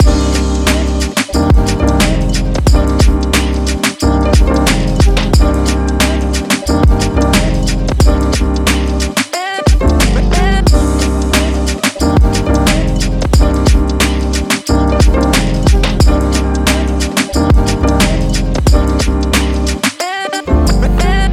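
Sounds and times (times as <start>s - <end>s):
groovy hip hop loop: 0.0s - 21.3s.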